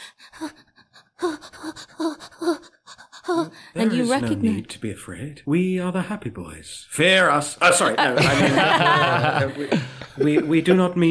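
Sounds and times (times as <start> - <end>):
voice imitating the shivering halting breaths of a tiny creature: 0.0 - 4.3
speech: 3.8 - 11.0
laughter: 7.6 - 11.0.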